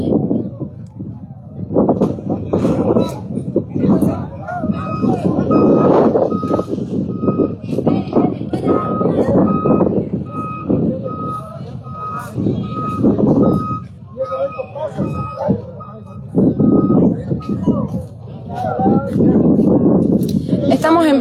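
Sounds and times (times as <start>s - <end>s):
heavy truck rumbling at a road blockade: 0.0s - 21.2s
indistinct voices: 0.0s - 21.2s
outdoor noise: 0.0s - 21.2s
high truck reversing beeps: 4.7s - 7.8s, 8.6s - 18.0s.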